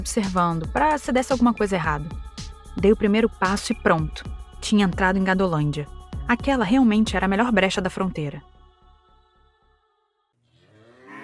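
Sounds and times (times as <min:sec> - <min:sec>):
speech: 0:00.0 - 0:08.5
cows mooing: 0:10.6 - 0:11.2.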